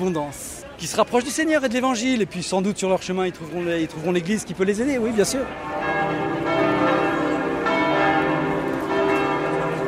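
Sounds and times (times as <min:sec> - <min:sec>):
speech: 0:00.0 - 0:05.9
church bells ringing in a carillon peal: 0:05.2 - 0:09.8.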